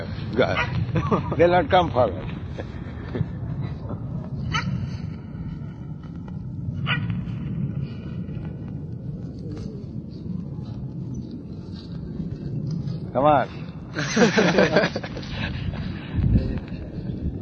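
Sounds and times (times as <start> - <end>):
speech: 0.0 - 3.4, 13.2 - 15.1
steady low rumble: 0.0 - 17.4
dogs barking: 0.5 - 0.8, 4.5 - 4.8, 6.8 - 7.2
laughter: 0.9 - 1.4, 13.9 - 16.0.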